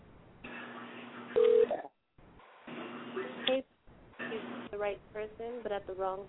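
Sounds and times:
phone line tone: 1.4 - 1.8
speech: 4.8 - 6.2.

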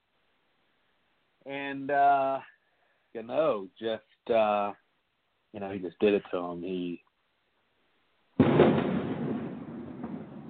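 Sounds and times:
speech: 1.4 - 2.5, 3.1 - 4.8, 5.5 - 7.0
cannon boom sound effect: 8.4 - 10.4.

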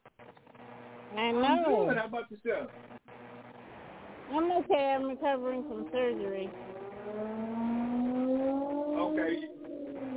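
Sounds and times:
speech: 1.1 - 2.9, 4.3 - 7.4, 9.1 - 9.5
car engine accelerating: 5.2 - 10.1.

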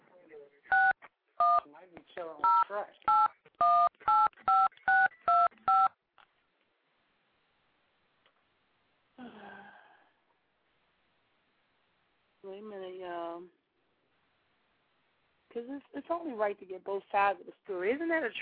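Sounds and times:
touch-tone phone beeps dialing a number: 0.7 - 1.6, 2.4 - 6.0
speech: 1.8 - 3.9, 15.6 - 18.3.

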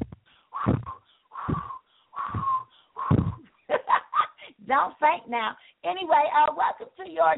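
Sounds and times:
several people breathing in and blowing out forcefully: 0.2 - 3.5
speech: 4.7 - 7.3.

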